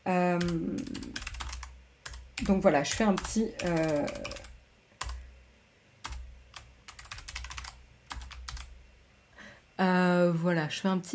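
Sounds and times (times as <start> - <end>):
low steady hum: 0.0 - 11.1
typing on a computer keyboard: 0.4 - 5.2, 6.0 - 8.7
speech: 2.4 - 4.4, 10.5 - 11.1.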